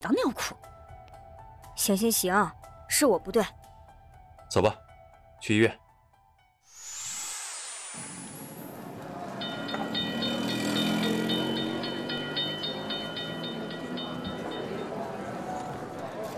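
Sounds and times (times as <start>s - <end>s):
speech: 1.8s - 3.6s, 4.5s - 4.8s, 5.4s - 5.8s
tram rolling on rails: 8.5s - 16.3s
high metallic ringing: 9.3s - 15.4s.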